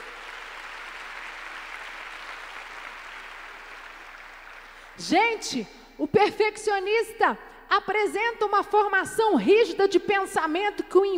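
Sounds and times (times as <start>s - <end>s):
crowd clapping: 0.0s - 5.0s
speech: 5.0s - 11.1s.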